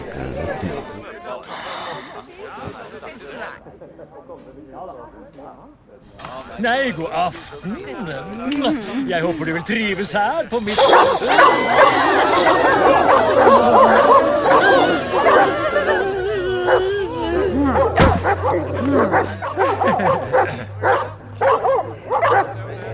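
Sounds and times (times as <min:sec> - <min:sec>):
laughter: 0:00.0 - 0:04.2, 0:06.8 - 0:22.9
speech: 0:04.2 - 0:15.9
several dogs barking, yipping and whining: 0:10.8 - 0:22.6.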